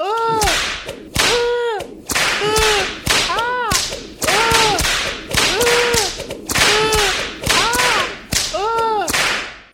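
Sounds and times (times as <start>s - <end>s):
whip lashes cracking: 0.2s - 9.7s.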